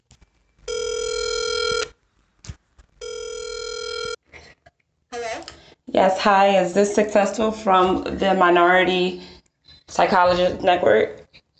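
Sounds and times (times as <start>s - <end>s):
electronic telephone ringing for an incoming caller: 0.7s - 2.0s, 3.0s - 4.2s
speech: 6.0s - 9.3s, 10.0s - 11.2s.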